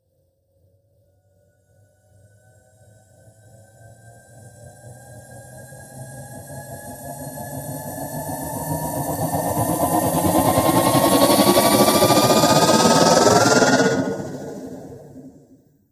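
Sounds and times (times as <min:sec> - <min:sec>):
metaphysical engine riser sound effect: 0:09.3 - 0:15.6.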